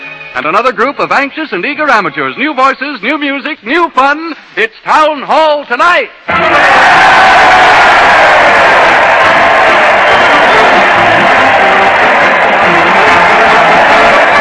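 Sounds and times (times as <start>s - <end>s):
speech: 0.4s - 7.9s
large crowd cheering at a parade: 6.3s - 14.4s.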